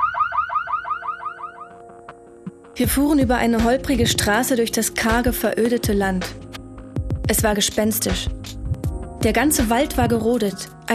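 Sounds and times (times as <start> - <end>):
car immobilizer alarm warbling electronic chirps: 0.0 - 1.8
speech: 2.8 - 6.4, 7.3 - 8.4, 9.2 - 10.9.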